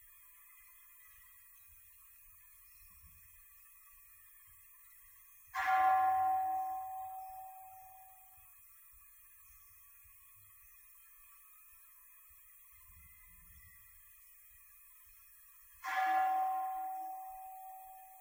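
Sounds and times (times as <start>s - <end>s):
meditation bell ringing: 5.6s - 8.4s, 15.8s - 18.1s.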